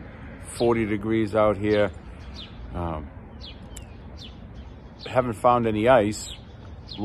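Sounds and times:
birds chirping outdoors: 0.0s - 7.0s
speech: 0.6s - 3.2s, 5.0s - 6.4s.

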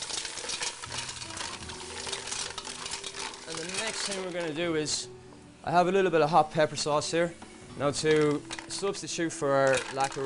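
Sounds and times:
mussel shells scraping and clattering in a pot of sauce: 0.0s - 4.7s, 8.0s - 10.2s
sizzling: 0.0s - 10.2s
speech: 3.9s - 10.2s.

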